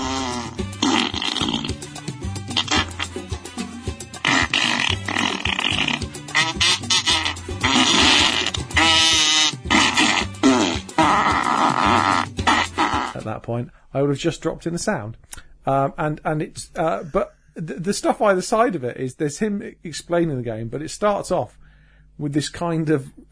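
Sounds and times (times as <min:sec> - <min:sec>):
crude fart sound effects from a video game crowdfunding promo: 0:00.0 - 0:03.4, 0:04.2 - 0:13.2
speech: 0:13.5 - 0:21.6, 0:22.2 - 0:23.3.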